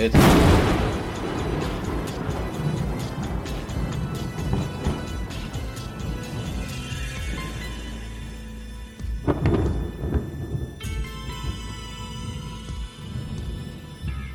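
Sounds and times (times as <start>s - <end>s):
speech: 0.0s - 1.4s
sharp thunder crack: 0.0s - 7.8s, 9.2s - 11.1s
rumbling thunder crash: 0.0s - 7.9s, 9.1s - 14.1s.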